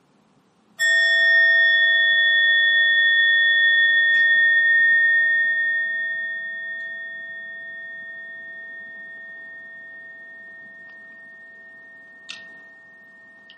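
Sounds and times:
meditation bell struck in Buddhist practice: 0.8s - 13.5s.

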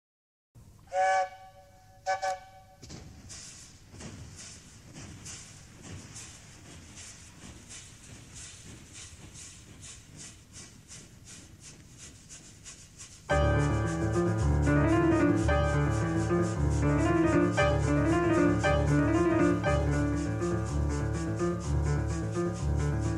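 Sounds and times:
little train locomotive whistle blasts: 0.9s - 2.8s
little train locomotive chugging hiss: 3.2s - 23.1s.

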